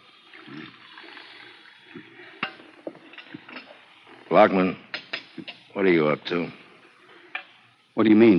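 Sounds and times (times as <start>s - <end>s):
coffee pouring into a cup: 0.0s - 8.3s
crockery clinking: 2.3s - 3.9s, 4.9s - 5.6s
speech: 4.3s - 4.8s, 5.4s - 6.6s, 8.0s - 8.3s.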